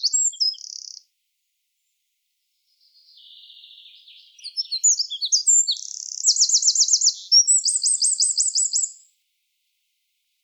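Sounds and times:
Eurasian wren Troglodytes troglodytes singing: 0.0s - 1.0s, 3.1s - 9.1s.

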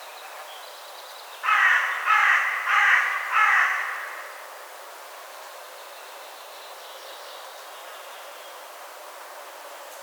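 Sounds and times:
carrion crow Corvus corone cawing: 1.4s - 4.4s.

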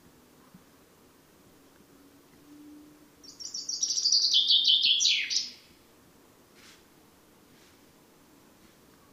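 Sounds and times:
common chaffinch Fringilla coelebs singing: 1.7s - 5.8s.

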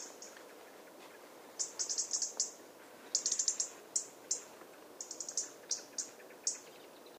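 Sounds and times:
faint background hiss: 0.0s - 7.1s
European robin Erithacus rubecula giving thin very high call notes: 1.6s - 6.7s.

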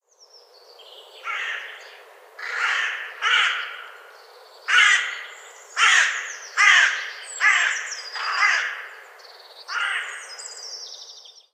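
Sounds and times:
carrion crow Corvus corone cawing: 1.2s - 4.1s, 4.7s - 9.1s, 9.7s - 10.5s.

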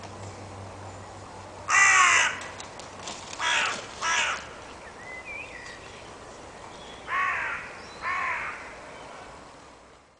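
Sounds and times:
carrion crow Corvus corone cawing: 1.7s - 2.6s, 3.4s - 4.6s, 7.1s - 8.8s.

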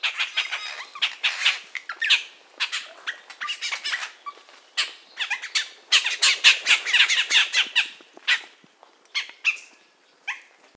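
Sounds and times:
bird giving harsh buzzy squawks: 0.0s - 8.5s.

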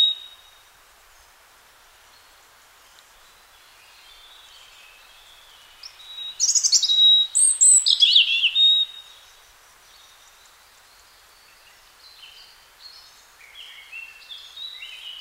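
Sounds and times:
European robin singing rippling warbles: 0.0s - 0.6s, 3.2s - 15.1s.

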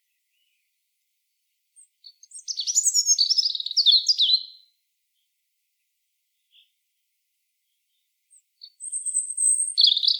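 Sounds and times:
European robin Erithacus rubecula singing: 1.8s - 4.7s, 8.3s - 10.1s.

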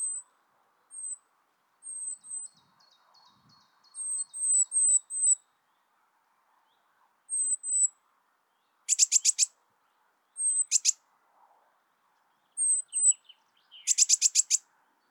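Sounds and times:
Eurasian blue tit Cyanistes caeruleus calling: 0.9s - 1.2s, 4.0s - 5.4s, 7.3s - 7.9s, 8.9s - 9.5s, 10.4s - 11.0s, 12.6s - 14.6s.

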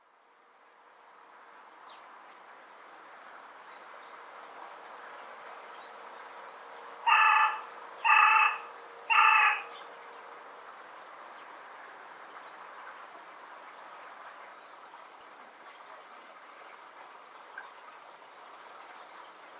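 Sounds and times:
carrion crow Corvus corone cawing: 7.1s - 9.7s.

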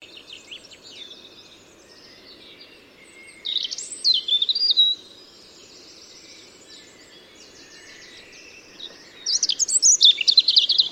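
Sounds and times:
European robin Erithacus rubecula singing: 0.0s - 10.9s
background hiss: 0.0s - 10.9s.

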